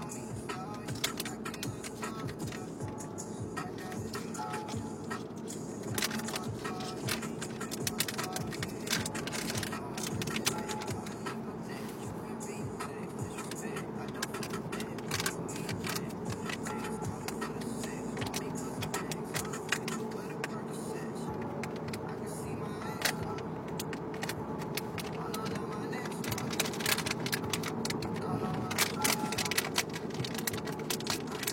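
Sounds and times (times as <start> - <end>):
low steady vehicle rumble: 0.0 - 31.5
plastic beef jerky bag crinkling and rustling inside a car: 5.9 - 11.2, 26.2 - 28.0, 28.6 - 31.5.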